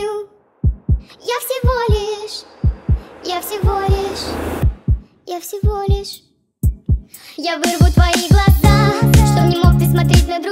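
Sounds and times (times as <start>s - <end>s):
heartbeat thumping in deep double beats: 0.6s - 7.1s
speech: 5.4s - 6.3s, 7.4s - 10.5s.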